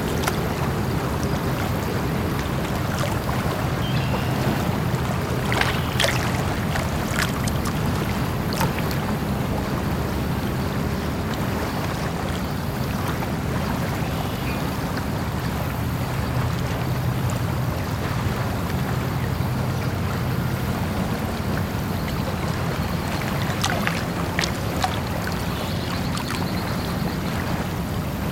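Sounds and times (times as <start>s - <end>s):
water lapping steadily at a lake's edge: 0.0s - 28.3s
brief bright chirps or splashes: 3.7s - 4.6s, 5.2s - 9.0s, 22.1s - 27.4s.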